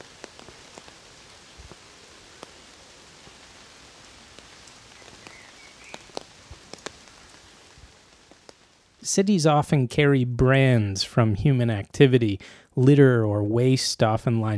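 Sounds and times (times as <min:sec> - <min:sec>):
steady rain on broad waxy tree leaves along the banks of the Rhône: 0:00.0 - 0:12.9
faint bird chirping: 0:04.6 - 0:06.2
speech: 0:09.0 - 0:14.5.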